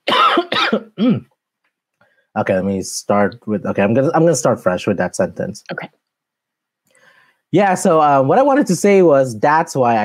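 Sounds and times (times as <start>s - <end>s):
person coughing: 0.0s - 1.3s
speech: 0.7s - 1.3s, 2.4s - 6.0s, 7.5s - 10.0s.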